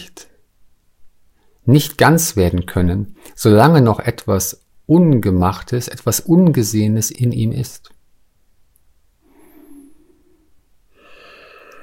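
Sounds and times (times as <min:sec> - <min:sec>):
speech: 0:01.7 - 0:08.0
deep audible breath drawn in and let out slowly: 0:09.2 - 0:11.8.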